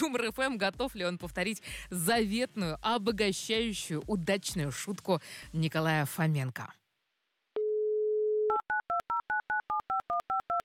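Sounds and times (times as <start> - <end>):
speech: 0.0 - 6.8
steady telephone dial tone: 7.6 - 10.6.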